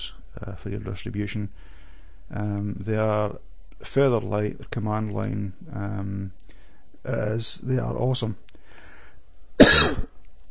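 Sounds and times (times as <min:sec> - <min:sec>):
faint hiss: 0:00.0 - 0:10.5
speech: 0:00.4 - 0:06.4, 0:07.0 - 0:08.4, 0:09.6 - 0:10.1
person coughing harsh and breathy: 0:09.6 - 0:10.1.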